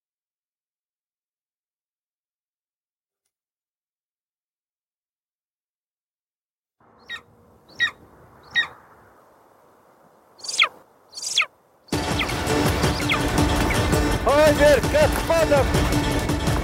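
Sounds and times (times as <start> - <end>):
eagle screeching while hunting prey: 7.0 - 8.8, 10.4 - 14.0
loud rushing burst of noise: 11.9 - 16.6
speech: 14.5 - 16.2.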